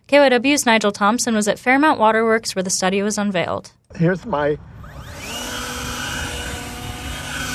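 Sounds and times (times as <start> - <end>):
speech: 0.1 - 5.4
electric leaf blower whirring at a press conference: 4.7 - 7.5.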